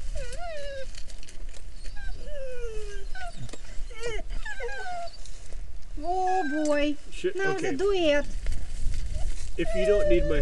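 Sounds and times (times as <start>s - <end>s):
dog whimpering in high wavering whines: 0.0s - 0.9s, 1.8s - 5.2s, 6.0s - 6.8s, 9.2s - 10.4s
speech: 7.2s - 8.4s, 9.6s - 10.4s.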